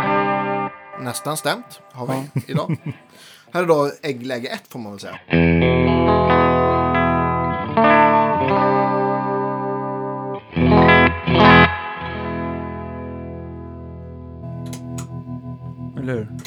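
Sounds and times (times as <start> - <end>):
laughter: 1.0 - 5.2
speech: 1.0 - 6.4
Jetstream 390 electric guitar playing sustained chords drenched in reverb: 5.2 - 15.8.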